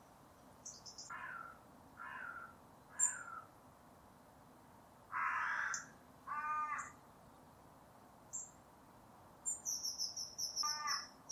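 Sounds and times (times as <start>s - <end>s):
quiet hiss: 0.0s - 11.3s
bird uttering drawn-out raspy caws: 1.1s - 3.5s, 5.1s - 7.0s, 10.6s - 11.3s.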